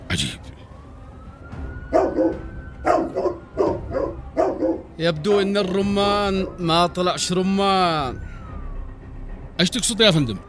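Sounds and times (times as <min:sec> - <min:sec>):
speech: 0:00.1 - 0:00.5, 0:05.0 - 0:08.3, 0:09.6 - 0:10.4
drug-sniffing dog barking: 0:01.9 - 0:04.9.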